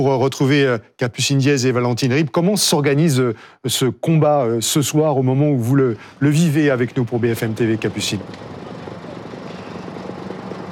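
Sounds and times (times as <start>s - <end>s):
speech: 0.0s - 8.6s
firefighting helicopter droning overhead: 5.9s - 10.6s.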